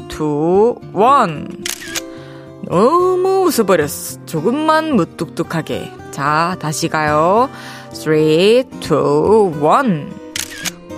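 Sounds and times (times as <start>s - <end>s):
speech: 0.2s - 1.7s, 2.6s - 10.2s
camera shutter clicking: 1.6s - 2.1s, 10.4s - 10.8s.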